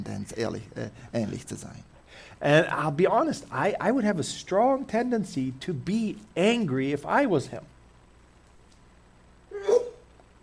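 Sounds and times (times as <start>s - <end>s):
speech: 0.0s - 7.7s
sneeze: 9.5s - 10.0s.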